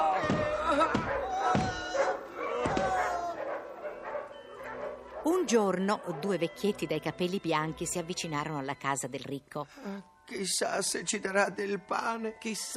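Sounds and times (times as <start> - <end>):
several unleashed dogs barking at beggars in the street: 0.1 - 6.5
speech: 5.5 - 12.7.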